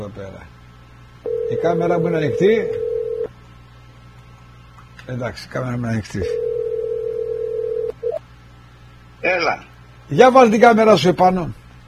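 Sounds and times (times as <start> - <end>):
speech: 0.0 - 0.6, 1.2 - 2.9, 5.1 - 6.4, 9.2 - 11.6
steady electronic telephone dial tone: 1.3 - 1.6, 2.3 - 3.3, 6.4 - 8.2.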